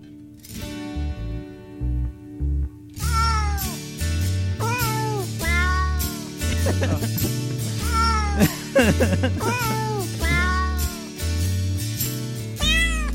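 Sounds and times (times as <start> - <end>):
soft instrumental backing: 0.0 - 13.1
cat meows pitched to a Christmas carol melody: 3.0 - 3.8, 4.6 - 6.2, 7.8 - 8.4, 9.5 - 11.1, 12.6 - 13.1
laughter: 6.4 - 10.5.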